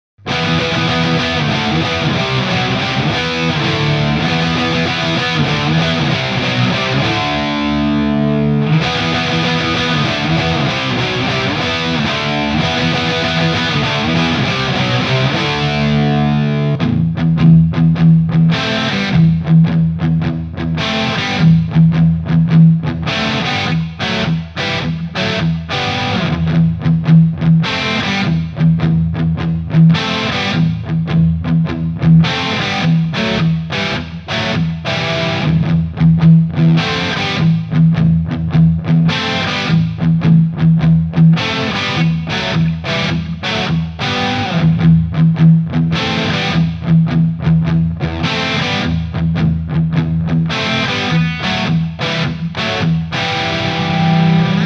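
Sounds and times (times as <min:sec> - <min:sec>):
Gibson R8 electric guitar through an Egnater M4 XTC amplifier: 0:00.2 - 0:54.6.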